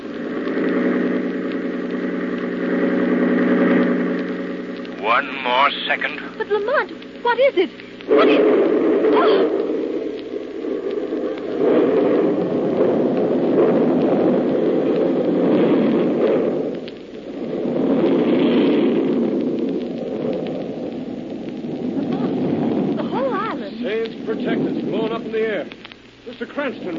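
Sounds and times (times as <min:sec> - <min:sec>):
massive bomb explosion: 0:00.0 - 0:26.9
speech: 0:05.2 - 0:09.6.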